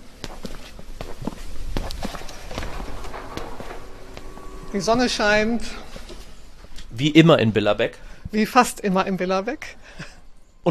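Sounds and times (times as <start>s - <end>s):
footsteps on a hard outdoor square surface: 0.0s - 4.5s
speech: 4.7s - 5.8s, 7.0s - 10.6s.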